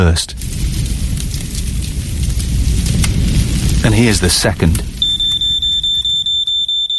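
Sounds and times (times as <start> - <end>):
speech: 0.0 - 0.6, 3.9 - 4.9
low rumbling noise: 0.0 - 6.8
spreading household fire roaring and crackling: 0.0 - 6.9
smoke alarm beeping: 5.0 - 6.9.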